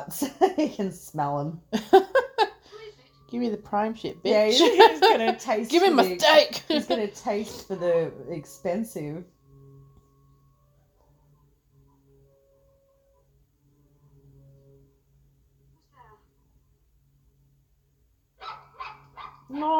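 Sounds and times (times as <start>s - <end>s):
speech: 0.0s - 2.0s, 3.3s - 9.4s, 19.5s - 19.7s
laughter: 1.8s - 2.7s, 4.5s - 7.1s
dog yelping: 18.4s - 19.5s.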